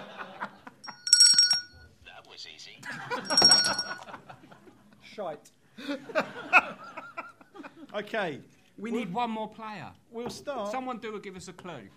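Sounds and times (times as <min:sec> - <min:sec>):
laughter: 0:00.0 - 0:00.8, 0:02.8 - 0:05.0, 0:05.8 - 0:07.9
hand bell ringing: 0:00.8 - 0:01.8, 0:03.1 - 0:04.0
speech: 0:05.2 - 0:06.6, 0:08.0 - 0:11.9.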